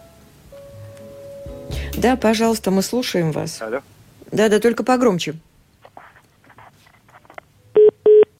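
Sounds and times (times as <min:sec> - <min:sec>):
speech: 0:02.0 - 0:05.5
telephone line beeps after a dropped call: 0:07.8 - 0:08.3.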